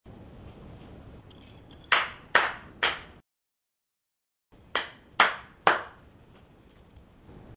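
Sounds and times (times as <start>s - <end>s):
claps: 1.9s - 3.1s, 4.7s - 6.0s.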